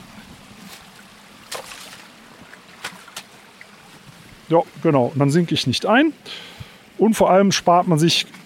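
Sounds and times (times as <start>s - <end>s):
flowing forest stream rushing: 0.0s - 8.4s
someone stepping onto stones in the water: 0.6s - 4.2s
speech: 4.5s - 8.4s.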